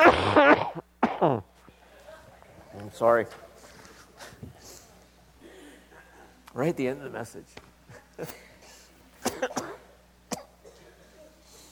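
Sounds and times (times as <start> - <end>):
person coughing: 0.0 - 1.4, 9.2 - 11.3
speech: 1.2 - 1.5, 2.8 - 3.5, 6.6 - 7.6, 8.2 - 8.5, 9.4 - 9.7.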